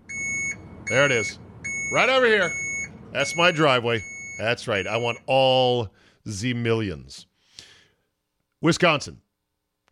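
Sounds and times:
armored truck reversing alarm beeping: 0.0s - 5.6s
speech: 0.9s - 7.3s, 8.6s - 9.2s.

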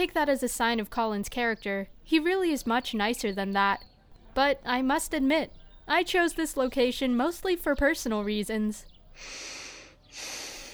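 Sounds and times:
speech: 0.0s - 10.4s
deep breath of fresh air in through the nose: 9.2s - 10.7s.

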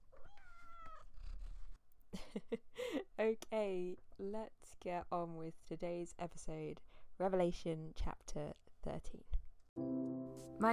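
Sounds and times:
female cat meowing with a wavering tone: 0.1s - 1.2s
speech: 2.3s - 9.9s.

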